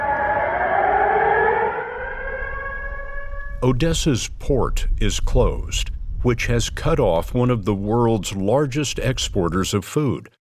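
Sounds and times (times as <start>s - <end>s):
loud air raid siren wailing: 0.0s - 4.1s
speech: 3.6s - 10.4s.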